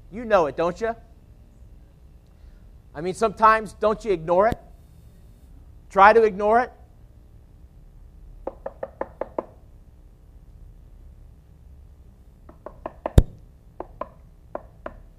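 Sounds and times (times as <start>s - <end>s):
speech: 0.1s - 1.1s, 3.0s - 4.6s, 5.9s - 6.8s
knocking on a door: 8.4s - 9.6s, 12.5s - 15.0s.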